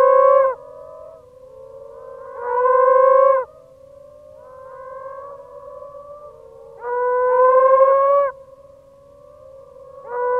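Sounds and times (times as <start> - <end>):
moaning frog calling: 0.0 - 10.3.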